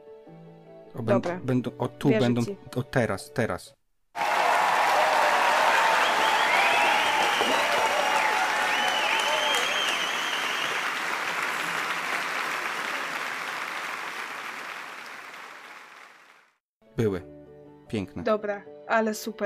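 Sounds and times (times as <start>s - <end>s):
speech: 0.9s - 3.8s, 17.9s - 19.4s
applause from a sizable crowd: 4.2s - 16.6s.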